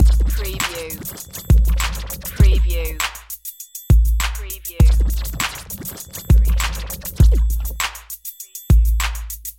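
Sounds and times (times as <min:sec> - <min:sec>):
fast scratching: 0:00.0 - 0:03.3, 0:04.3 - 0:08.5.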